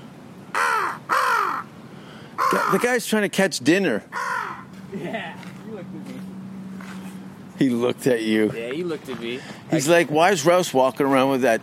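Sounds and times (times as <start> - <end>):
crow cawing: 0.5 - 2.9, 4.1 - 4.8
speech: 2.5 - 4.2, 7.6 - 11.6.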